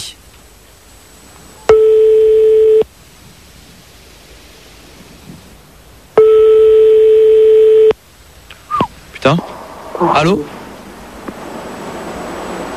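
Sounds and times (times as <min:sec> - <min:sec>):
faint hiss: 0:00.0 - 0:12.7
telephone ringing tones while a number is being called: 0:01.7 - 0:02.9, 0:06.2 - 0:08.0
speech: 0:09.2 - 0:10.6.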